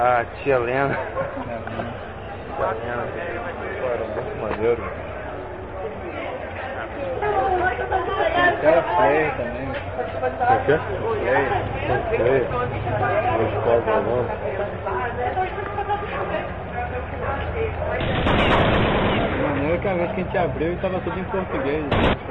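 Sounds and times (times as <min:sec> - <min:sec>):
speech: 0:00.0 - 0:05.1, 0:07.9 - 0:22.2
busy voices: 0:00.0 - 0:22.2
laughter: 0:00.8 - 0:01.9
video game gunfire: 0:18.0 - 0:19.6, 0:21.9 - 0:22.2
game noise: 0:18.0 - 0:19.8, 0:21.9 - 0:22.2.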